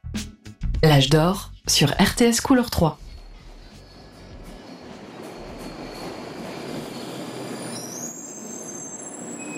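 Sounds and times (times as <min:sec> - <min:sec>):
speech: 0:00.8 - 0:03.0
train rumbling at a railway station: 0:01.9 - 0:09.5
high sustained metallic squeals of train wheels: 0:03.2 - 0:09.5.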